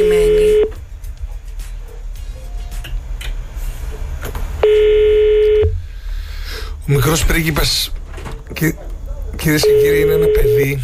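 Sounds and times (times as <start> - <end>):
ringback tone on an outgoing phone call: 0.0 - 0.7, 4.6 - 5.8, 9.6 - 10.7
low hum: 0.0 - 10.8
speech: 7.0 - 8.0, 8.6 - 10.8.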